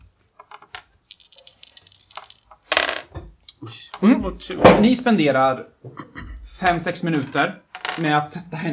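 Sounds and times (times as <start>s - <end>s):
dice clattering and rattling across a hard surface: 0.5s - 3.1s, 7.2s - 8.1s
speech: 3.6s - 8.7s.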